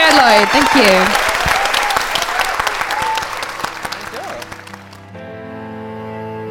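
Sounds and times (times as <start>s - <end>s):
faint cheers: 0.0s - 4.6s
live audience applause: 0.0s - 5.2s
speech: 0.1s - 1.3s.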